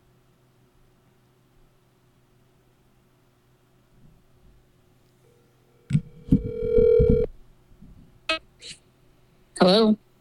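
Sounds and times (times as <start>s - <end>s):
ringback tone from an outgoing phone call: 6.0s - 7.3s
speech: 9.6s - 10.0s.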